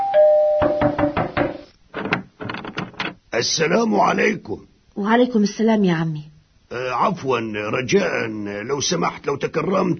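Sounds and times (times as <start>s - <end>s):
brief steady bell-like tone: 0.0s - 1.0s
knocking on a door: 0.6s - 3.2s
speech: 3.4s - 9.9s.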